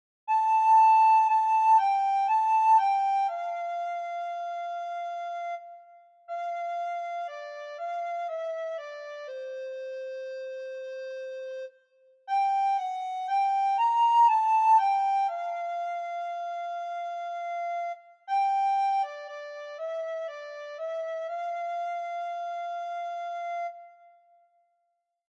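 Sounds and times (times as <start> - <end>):
solo soprano recorder playing a German Christmas carol: 0.3 - 24.1.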